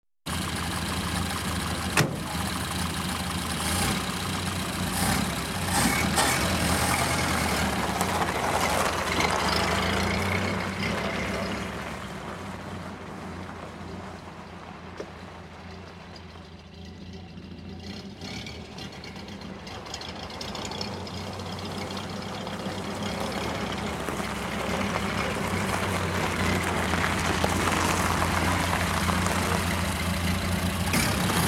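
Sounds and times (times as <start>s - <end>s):
truck driving on rocky road: 0.2s - 31.4s.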